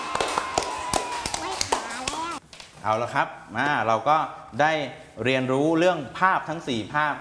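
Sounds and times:
hand clapping applause for a child during a lesson: 0.0s - 2.4s
speech: 2.8s - 7.1s.

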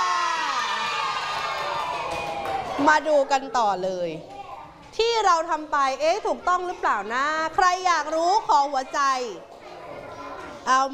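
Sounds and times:
group cheering and applauding as a timed activity ends: 0.0s - 2.8s
speech: 2.8s - 4.3s, 4.9s - 9.5s, 10.7s - 10.9s.

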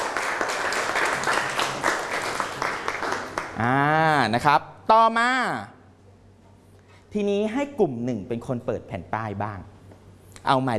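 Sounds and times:
group applause for a correct answer: 0.0s - 3.8s
speech: 3.6s - 5.8s, 7.1s - 9.7s, 10.4s - 10.7s.

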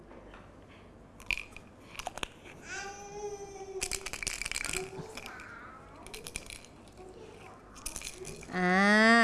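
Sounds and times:
red bean seeds rattling in a jar: 1.2s - 2.5s, 3.8s - 8.6s.

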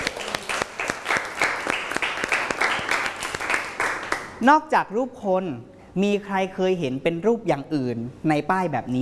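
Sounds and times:
group of children clapping for a classmate: 0.0s - 4.4s
speech: 4.4s - 9.0s.

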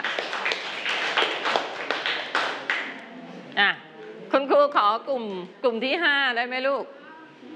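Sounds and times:
classroom children clapping for a classmate: 0.0s - 3.0s
speech: 3.6s - 3.8s, 4.7s - 7.0s.

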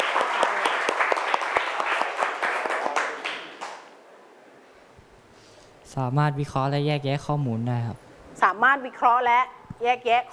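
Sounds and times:
students clapping in a classroom: 0.0s - 3.9s
speech: 6.0s - 10.3s.

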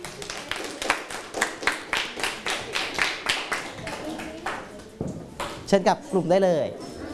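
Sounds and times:
group of students clapping in an indoor room: 0.0s - 4.9s
speech: 5.7s - 6.8s.

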